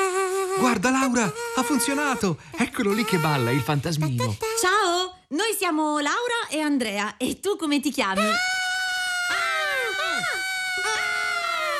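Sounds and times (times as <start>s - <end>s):
speech: 0.6s - 8.5s
several people screaming in high-pitched shrieks: 8.2s - 11.7s.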